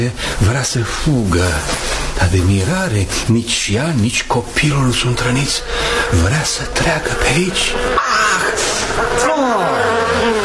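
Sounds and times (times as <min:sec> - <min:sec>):
speech: 0:00.0 - 0:10.4
swarm of honeybees buzzing: 0:04.7 - 0:10.4.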